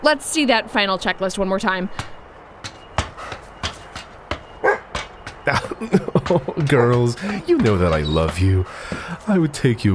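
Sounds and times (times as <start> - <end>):
speech: 0.0 - 2.2, 5.5 - 9.9
dogs barking: 4.6 - 7.5
laughter: 5.5 - 9.1.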